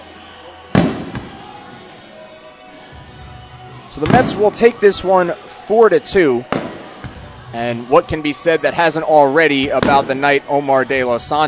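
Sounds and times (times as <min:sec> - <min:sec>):
fireworks exploding at a ballpark show: 0:00.8 - 0:02.1, 0:04.0 - 0:04.7, 0:06.4 - 0:07.4, 0:09.6 - 0:10.5
speech: 0:04.0 - 0:06.6, 0:07.5 - 0:11.4.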